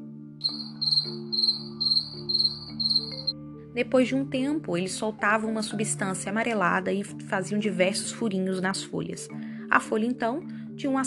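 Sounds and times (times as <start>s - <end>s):
crickets chirping: 0.4s - 3.3s
speech: 3.8s - 11.0s.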